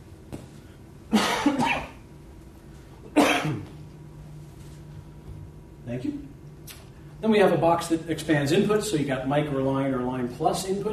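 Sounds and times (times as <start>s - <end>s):
person coughing: 1.1s - 2.0s, 3.1s - 3.8s
person clearing their throat: 3.1s - 3.8s
speech: 5.9s - 6.3s, 7.2s - 10.9s.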